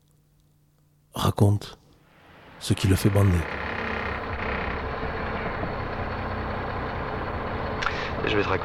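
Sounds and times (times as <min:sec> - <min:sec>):
speech: 0:01.3 - 0:01.8, 0:02.6 - 0:03.6, 0:08.3 - 0:08.6
road noise: 0:02.0 - 0:08.6
truck engine running while driving heard from inside the cab: 0:02.1 - 0:08.6.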